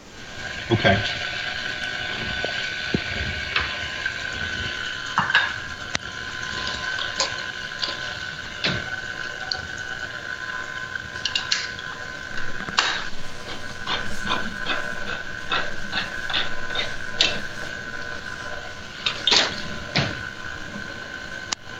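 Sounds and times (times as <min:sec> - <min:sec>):
stand mixer whirring while mixing canned pumpkin into creamed batter: 0:00.0 - 0:21.7
speech: 0:00.7 - 0:01.3.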